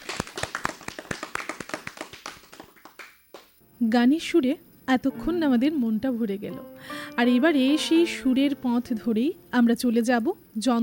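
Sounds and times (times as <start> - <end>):
audience applause for a young child after a song: 0.0 - 3.4
speech: 3.8 - 10.8.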